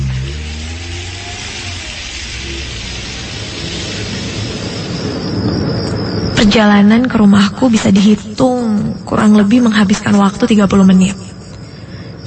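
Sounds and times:
car engine warmed up in a parking lot and driven off: 0:00.0 - 0:06.3
speech: 0:06.4 - 0:11.2.

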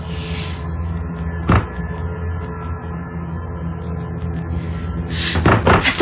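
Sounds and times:
low hum: 0:00.0 - 0:05.9
loud bang on a bedroom door: 0:01.5 - 0:01.7, 0:05.4 - 0:05.9.

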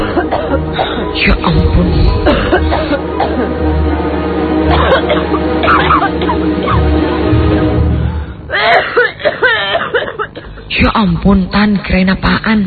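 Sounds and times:
harsh coughing bursts: 0:00.0 - 0:01.2, 0:02.2 - 0:03.7, 0:04.6 - 0:07.0, 0:08.5 - 0:10.7
steady low hum: 0:00.0 - 0:12.6
speech: 0:00.5 - 0:03.1, 0:10.8 - 0:12.6.

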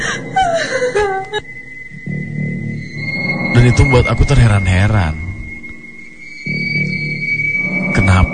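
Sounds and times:
woman wailing in pain near a hospital prayer room: 0:00.0 - 0:01.5
steady electronic tone: 0:01.3 - 0:08.3
speech: 0:03.6 - 0:05.2.

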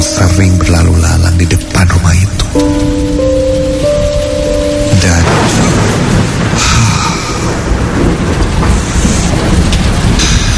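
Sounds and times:
thunder rumbling: 0:00.0 - 0:10.5
speech: 0:00.4 - 0:02.9.

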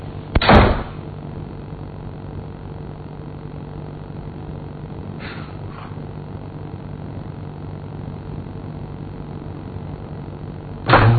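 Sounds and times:
bathroom door slamming shut: 0:00.4 - 0:01.0, 0:10.9 - 0:11.1.

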